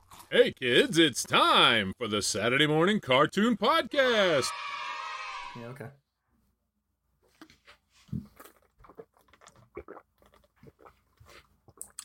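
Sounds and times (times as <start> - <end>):
speech: 0.3 - 4.8, 5.6 - 6.0
person gulping water: 7.5 - 12.0.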